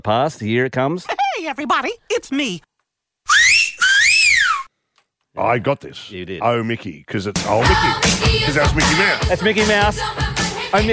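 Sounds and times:
speech: 0.0s - 2.7s, 3.3s - 3.5s, 5.4s - 10.9s
loud wolf whistle: 3.3s - 4.7s.

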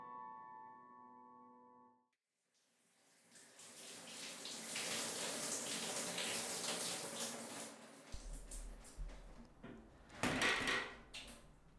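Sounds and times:
running water rushing: 3.2s - 11.7s
door opening with a low clunk: 8.1s - 11.7s
solid knocks and rattles: 8.2s - 11.7s.

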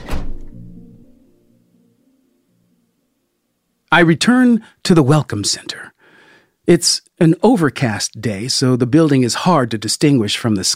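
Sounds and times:
van door slamming shut: 0.0s - 0.6s
speech: 3.9s - 6.0s, 6.6s - 10.7s.

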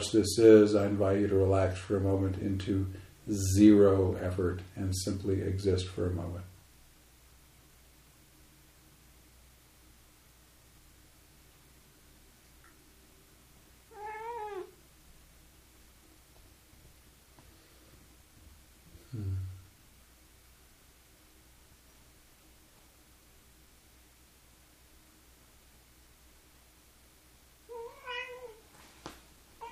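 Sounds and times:
speech: 0.0s - 6.5s
quiet hiss: 0.0s - 29.7s
cat meowing: 13.9s - 14.8s, 27.7s - 28.7s.

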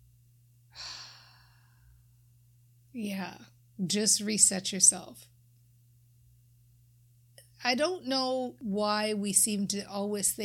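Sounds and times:
low steady hum: 0.0s - 10.4s
single big deep breath: 0.8s - 2.1s
speech: 3.0s - 5.3s, 7.6s - 10.4s.

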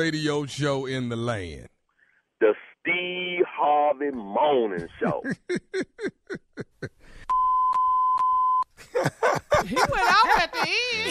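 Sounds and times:
speech: 0.0s - 1.7s, 2.4s - 7.0s
laughter: 4.8s - 7.0s, 8.8s - 11.1s
censor bleeps: 7.3s - 8.7s.

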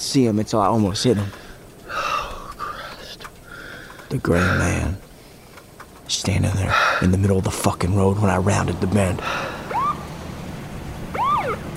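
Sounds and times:
low engine rumble: 0.0s - 11.7s
speech: 0.1s - 1.4s, 4.1s - 5.0s, 6.1s - 9.5s
sheriff's deputy car siren whoops on a foggy road: 9.7s - 10.0s, 11.1s - 11.6s.

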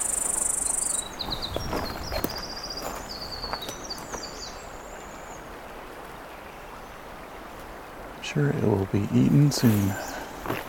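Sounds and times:
cicada buzzing in a tree: 0.0s - 1.1s
speech: 8.4s - 10.6s.

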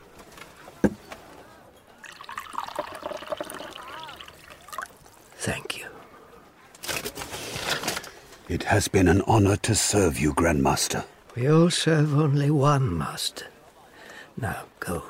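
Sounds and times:
soft hushed voices: 0.5s - 15.0s
liquid pouring into a cup: 2.0s - 5.3s
speech: 5.4s - 5.8s, 8.5s - 13.5s, 14.4s - 15.0s.

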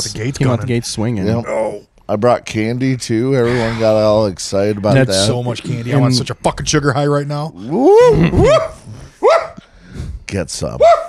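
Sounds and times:
speech: 0.0s - 9.4s, 10.3s - 11.0s
dog barking sharp yelping barks: 8.5s - 9.6s, 10.8s - 11.0s.

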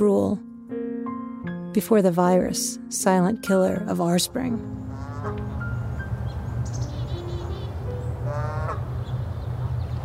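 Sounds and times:
speech: 0.0s - 0.5s, 1.8s - 5.4s
birds calling in Sapsucker Woods: 4.6s - 10.0s
harsh crow-like caws: 8.3s - 8.8s.

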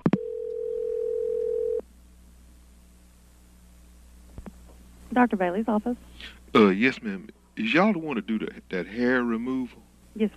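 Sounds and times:
telephone dial tone: 0.1s - 1.8s
speech: 5.2s - 10.3s.

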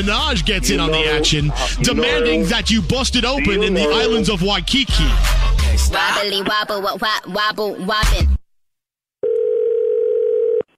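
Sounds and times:
speech: 0.0s - 8.4s
telephone dial tone: 9.2s - 10.7s.

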